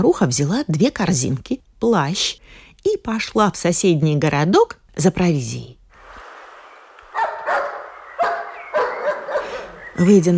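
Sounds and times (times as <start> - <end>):
speech: 0.0 - 5.8, 10.0 - 10.3
dog barking loudly: 7.1 - 10.0.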